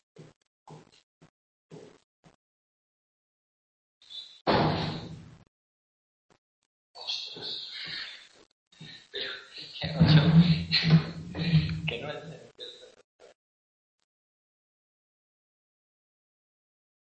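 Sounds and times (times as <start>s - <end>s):
door pushed shut with a solid thumping slam: 4.5s - 5.3s, 9.9s - 11.8s
door scraping rattle as it settles: 9.9s - 11.9s.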